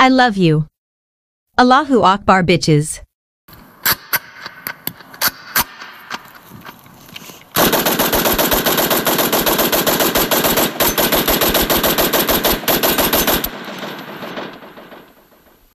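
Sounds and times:
speech: 0.0s - 0.7s, 1.6s - 3.1s
gunshots and rapid automatic gunfire: 7.6s - 15.2s.

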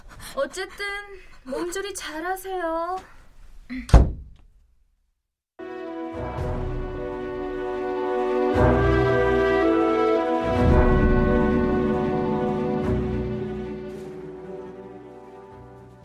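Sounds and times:
speech: 0.4s - 4.1s
solid room door thudding shut: 3.7s - 4.5s
sustained music: 5.6s - 16.0s.

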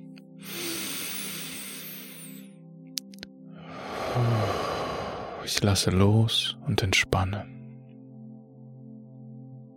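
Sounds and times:
slow deep inhale and long exhale: 0.4s - 2.7s, 3.5s - 5.5s
speech: 5.5s - 7.6s.

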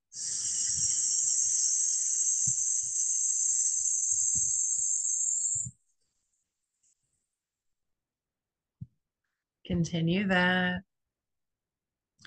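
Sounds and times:
slow hissing exhale through the mouth in a breathing exercise: 0.1s - 5.0s
speech: 9.8s - 10.9s.

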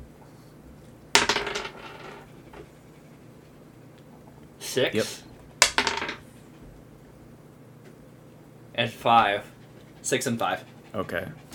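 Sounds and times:
small hard dice clattering across a tabletop: 1.2s - 2.2s, 5.6s - 6.2s
speech: 4.7s - 5.3s, 8.8s - 9.5s, 10.1s - 11.5s.

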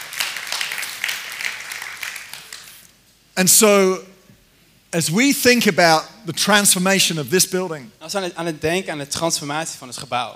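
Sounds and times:
audience applauding at a church gathering: 0.0s - 2.8s
speech: 3.4s - 4.1s, 4.9s - 10.3s.

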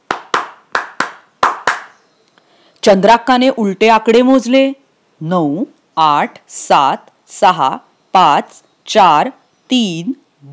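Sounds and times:
sharp hand claps by a girl: 0.0s - 2.0s
speech: 2.8s - 10.5s.

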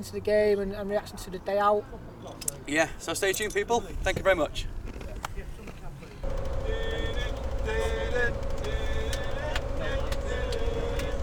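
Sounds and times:
speech: 0.0s - 4.8s
moving bus engine rumbling and droning: 5.7s - 11.2s
low hum: 6.2s - 11.2s
group of voices singing together on a moving bus: 6.6s - 11.2s.

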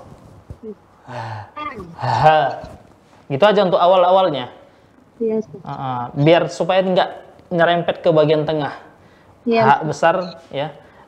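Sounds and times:
speech: 0.6s - 4.6s, 5.2s - 10.8s
breathy voiced hah exhalations during breathing practice exercise: 1.0s - 2.3s.

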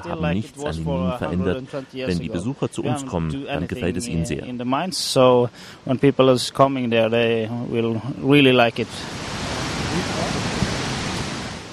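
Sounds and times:
speech: 0.0s - 9.3s, 10.0s - 10.5s
roar of rushing water: 8.0s - 11.7s.

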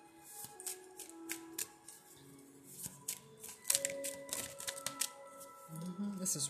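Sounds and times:
soft sustained musical tones: 0.0s - 6.4s
playing cards being shuffled during a card reading: 0.2s - 2.1s, 2.7s - 5.9s.

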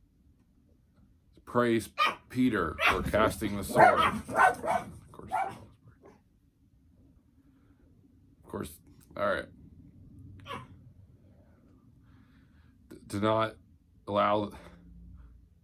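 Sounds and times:
steady low hum: 0.0s - 15.6s
speech: 1.5s - 5.6s, 8.6s - 9.6s, 13.1s - 14.6s
dog barking: 2.0s - 5.7s, 10.4s - 10.7s.

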